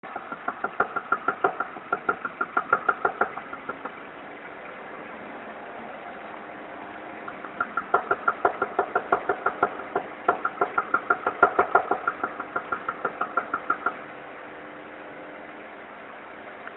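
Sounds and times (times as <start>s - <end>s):
engine backfire in intake manifold: 0.0s - 4.0s, 7.2s - 14.1s.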